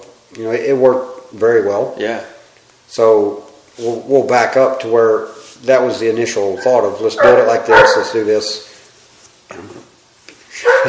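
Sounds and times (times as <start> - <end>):
speech: 0.3 - 2.3, 2.9 - 8.7, 9.5 - 9.9, 10.6 - 10.8
dog barking: 7.1 - 8.3, 10.6 - 10.8
dog yipping and whining: 7.2 - 8.2, 10.7 - 10.8.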